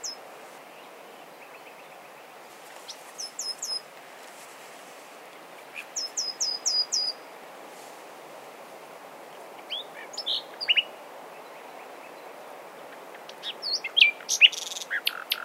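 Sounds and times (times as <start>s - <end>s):
Common nightingale Luscinia megarhynchos singing: 0.0s - 0.2s, 2.9s - 3.9s, 5.7s - 7.3s, 9.6s - 12.3s, 12.9s - 15.4s.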